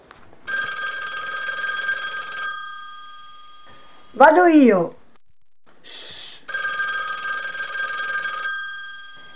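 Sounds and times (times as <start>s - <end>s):
old-style telephone bell ringing: 0.5s - 4.5s, 6.5s - 9.3s
speech: 4.2s - 5.0s
hiss: 5.8s - 6.5s.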